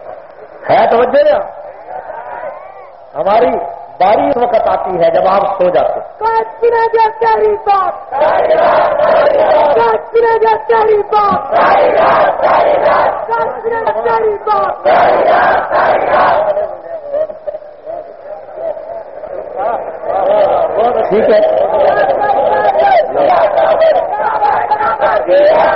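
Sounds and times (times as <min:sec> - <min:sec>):
large crowd chanting a slogan: 0:00.0 - 0:04.0, 0:08.0 - 0:10.1, 0:11.2 - 0:17.2, 0:17.9 - 0:25.7
speech: 0:00.6 - 0:01.6, 0:03.1 - 0:16.7, 0:19.6 - 0:25.7.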